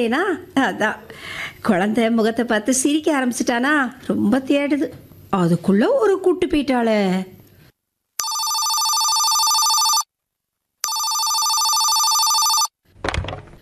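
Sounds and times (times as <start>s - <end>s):
speech: 0.0s - 7.4s
telephone ringing with electronic trills: 8.2s - 10.1s, 10.8s - 12.8s.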